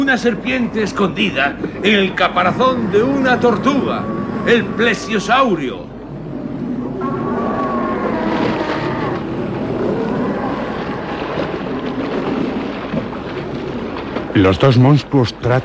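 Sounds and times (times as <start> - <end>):
faint whistling tones: 0.0 - 9.0
huge waves surging against a raft on a rough sea: 0.0 - 15.6
speech: 0.1 - 5.9, 14.4 - 15.6.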